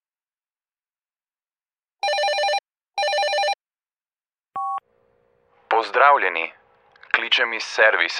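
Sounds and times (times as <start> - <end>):
telephone ringing with electronic trill: 2.0 - 3.6
answering machine beep: 4.6 - 4.8
speech: 5.8 - 6.6, 7.2 - 8.1.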